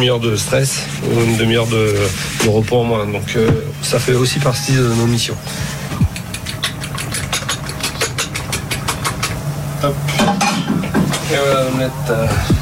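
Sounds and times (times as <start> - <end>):
speech: 0.0 - 5.8, 9.8 - 10.4, 11.3 - 12.5
dishes and metal utensils clattering inside a cycling team's kitchen truck: 6.4 - 9.4, 10.1 - 11.4.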